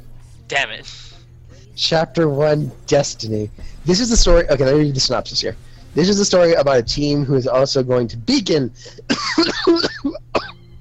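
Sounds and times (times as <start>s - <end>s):
speech: 0.5s - 1.1s, 1.8s - 9.9s
person coughing and laughing: 8.9s - 10.6s.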